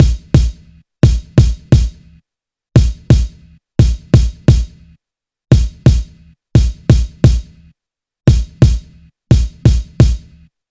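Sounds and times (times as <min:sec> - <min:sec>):
boom bap drum loop with kick: 0:00.0 - 0:02.0, 0:02.8 - 0:04.8, 0:05.5 - 0:07.6, 0:08.3 - 0:10.4.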